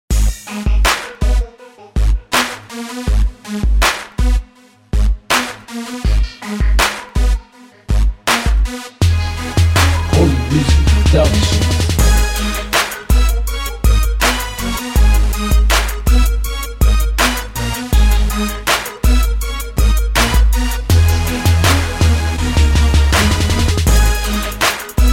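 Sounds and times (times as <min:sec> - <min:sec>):
crunk beat: 0:00.1 - 0:04.4, 0:05.0 - 0:25.1.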